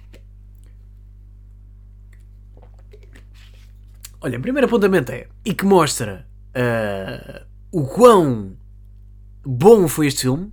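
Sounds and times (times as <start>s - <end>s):
steady low electrical hum: 0.0s - 10.5s
person drinking water with wet gulping swallows: 2.1s - 4.2s
speech: 4.2s - 8.6s, 9.4s - 10.5s.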